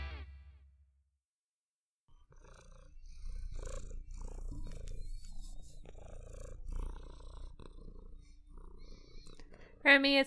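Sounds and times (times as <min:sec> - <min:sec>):
cat purring against the microphone: 0:02.1 - 0:09.8
speech: 0:09.9 - 0:10.2.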